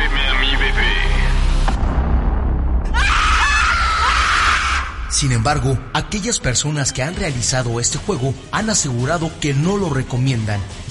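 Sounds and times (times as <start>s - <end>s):
deep ominous rumble: 0.0s - 6.5s
woman screaming as a horror sound effect: 2.9s - 5.0s
speech: 5.2s - 10.8s.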